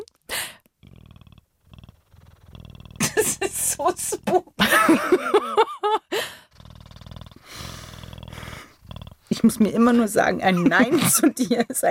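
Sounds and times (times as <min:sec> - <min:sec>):
brief breathy noise: 0:00.2 - 0:04.8, 0:06.1 - 0:10.3
person imitating a cat purring: 0:00.3 - 0:05.1, 0:06.4 - 0:10.9
laughter: 0:03.0 - 0:06.0, 0:10.5 - 0:11.7
speech: 0:03.2 - 0:06.3, 0:09.4 - 0:11.8.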